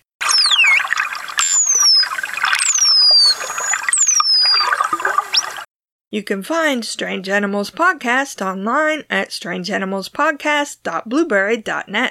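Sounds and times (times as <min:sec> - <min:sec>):
false killer whale whistles: 0:00.2 - 0:05.6
speech: 0:06.1 - 0:12.0.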